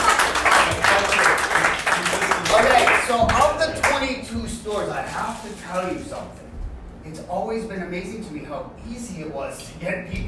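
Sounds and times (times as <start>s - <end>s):
audience applause: 0.0s - 4.0s
speech: 4.8s - 6.4s, 7.0s - 10.2s.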